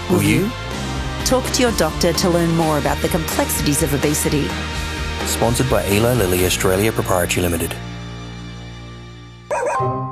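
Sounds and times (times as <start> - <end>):
speech: 0.1 - 0.6, 1.3 - 7.9
therapy dog barking: 9.5 - 9.9.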